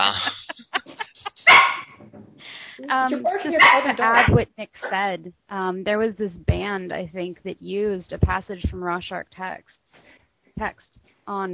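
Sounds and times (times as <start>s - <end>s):
laughter: 0.0s - 1.7s
dog barking in short sharp yaps: 1.5s - 2.0s, 3.6s - 4.3s
speech: 2.8s - 9.8s, 10.6s - 11.5s.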